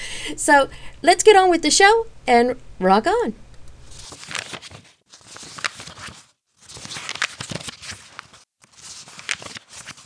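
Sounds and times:
speech: 0.3s - 3.4s
book pages turning: 3.9s - 10.0s.

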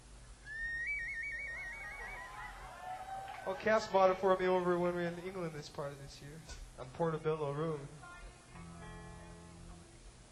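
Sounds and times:
potato whistle sounding a high note: 0.4s - 2.4s
speech: 3.5s - 8.0s.

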